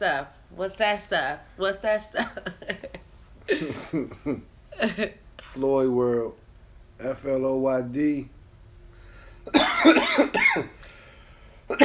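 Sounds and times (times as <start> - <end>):
speech: 0.0 - 6.4, 7.0 - 8.4, 9.5 - 10.9, 11.7 - 11.8
harsh raspy coughing fit: 3.5 - 4.5, 9.5 - 10.8, 11.7 - 11.8.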